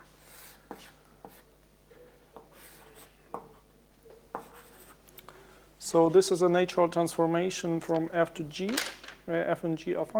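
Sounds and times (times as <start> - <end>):
writing notation scratching on a board: 0.2 - 3.7, 4.3 - 5.0
speech: 0.7 - 1.0, 5.9 - 10.1.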